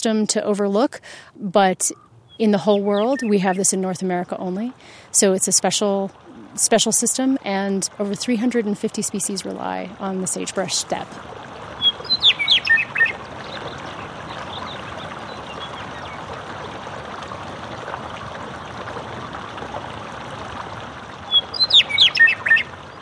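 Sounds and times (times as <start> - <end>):
speech: 0.0 - 11.5
meadowlark singing: 1.9 - 4.6, 11.8 - 16.4, 21.3 - 23.0
runoff water from hot springs thermal system flowing down a channel: 3.2 - 23.0.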